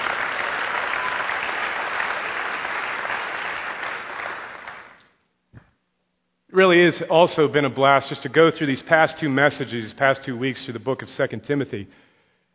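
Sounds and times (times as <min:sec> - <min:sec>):
congregation applauding: 0:00.0 - 0:05.0
speech: 0:06.6 - 0:12.1.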